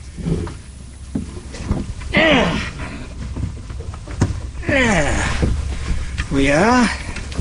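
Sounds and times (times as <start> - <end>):
water noise: 0.0 - 7.4
wind noise: 0.0 - 7.4
thumps and knocks against a lobster boat hull: 0.5 - 7.4
man grunting while climbing aboard a lobster boat: 2.1 - 2.9, 4.6 - 5.5
speech: 4.7 - 5.3, 6.4 - 7.0.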